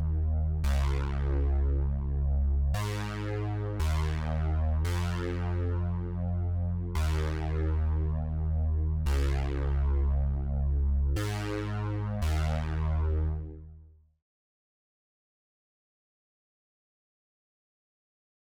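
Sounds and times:
114 BPM F minor bass melody loop: 0.1 - 13.5.

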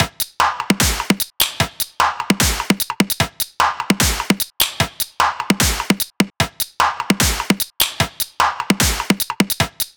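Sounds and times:
dubstep percussion loop: 0.0 - 9.9.

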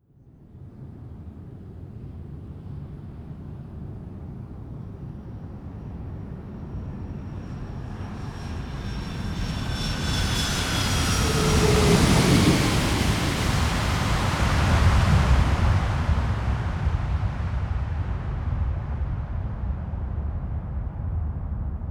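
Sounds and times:
jumbo jet aircraft landing: 6.1 - 21.8.

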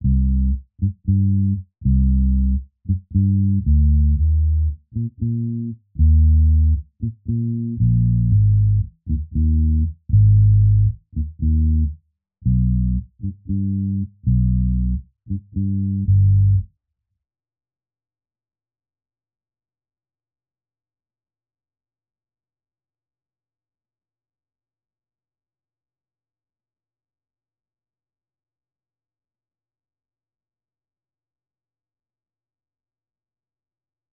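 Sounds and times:
bass loop: 0.0 - 16.6.

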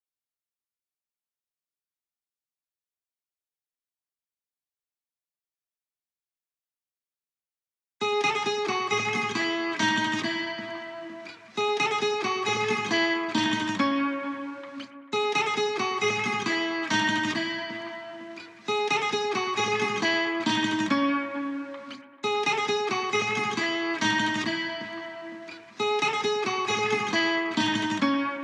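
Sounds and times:
acoustic guitar in C sharp minor: 8.0 - 28.4.

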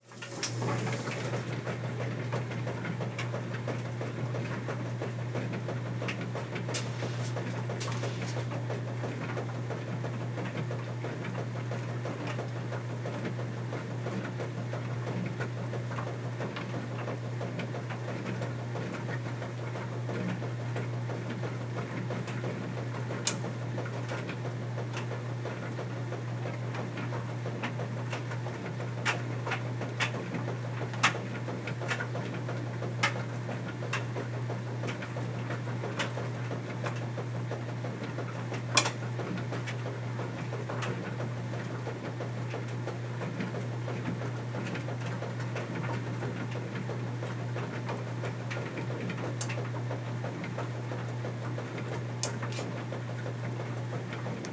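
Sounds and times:
washing machine running: 0.0 - 54.5.

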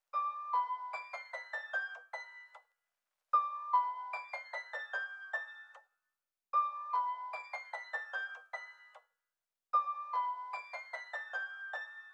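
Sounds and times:
nostalgic piano melody loop in E minor at 150 BPM: 0.1 - 2.6, 3.4 - 5.8, 6.6 - 9.0, 9.8 - 12.1.

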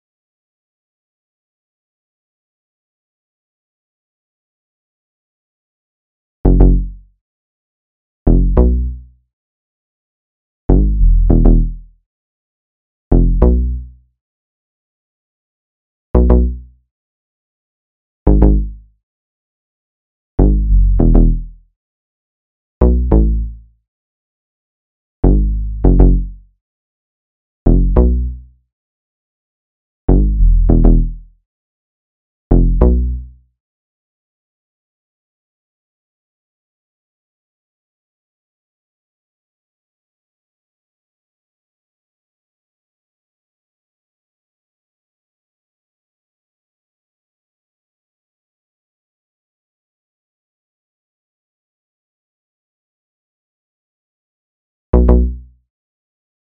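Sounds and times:
bass line in C sharp minor: 6.5 - 7.0, 8.3 - 9.0, 10.7 - 11.9, 13.1 - 13.8, 16.2 - 16.6, 18.3 - 18.8, 20.4 - 21.6, 22.8 - 23.6, 25.2 - 26.4, 27.7 - 28.4, 30.1 - 31.3, 32.5 - 33.2, 55.0 - 55.4.

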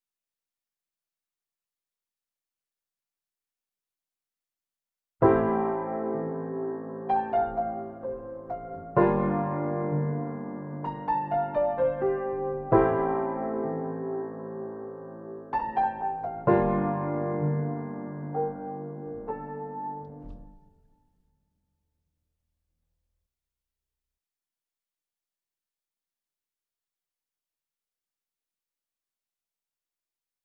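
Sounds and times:
piano melody in D minor at 128 BPM: 5.2 - 21.0.

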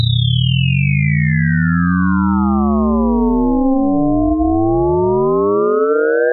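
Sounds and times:
riddim riser sound effect: 0.1 - 6.1.

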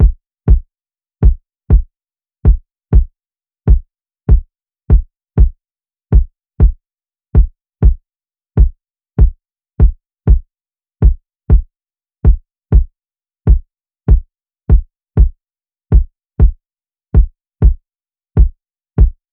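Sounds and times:
Afrobeats kick drum loop: 0.0 - 1.9, 2.5 - 3.1, 3.7 - 6.8, 7.4 - 8.0, 8.6 - 10.4, 11.0 - 12.9, 13.5 - 16.6, 17.2 - 17.8, 18.4 - 19.3.

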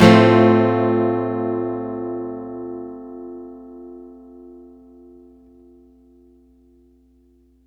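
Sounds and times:
acoustic guitar one shot in F major: 0.0 - 4.3.

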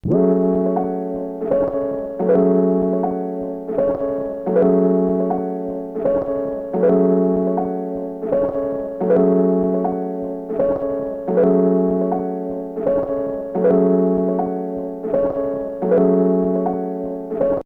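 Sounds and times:
tape loop melody in F sharp: 0.0 - 17.6.

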